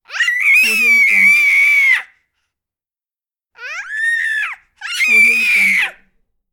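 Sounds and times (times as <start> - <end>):
baby screaming: 0.1 - 2.1, 3.6 - 6.0.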